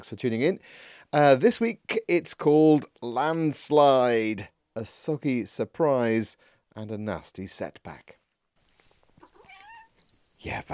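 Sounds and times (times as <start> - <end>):
speech: 0.0 - 8.2, 10.4 - 10.7
cat meowing: 9.2 - 10.2
faint high tonal chirps: 9.2 - 10.6.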